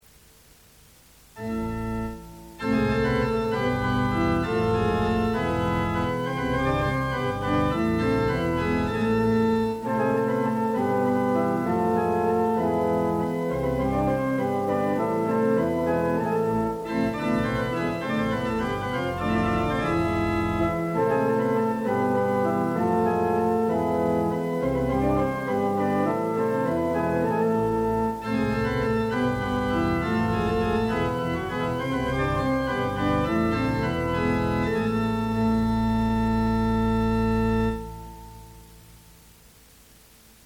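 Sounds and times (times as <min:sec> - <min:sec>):
hornpipe tune: 0:01.4 - 0:38.4.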